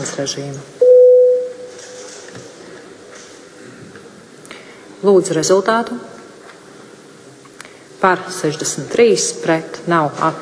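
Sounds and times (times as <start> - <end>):
speech: 0.0 - 0.8, 5.0 - 6.2, 8.0 - 10.3
electronic bell tone in a parliament before a vote: 0.8 - 1.8.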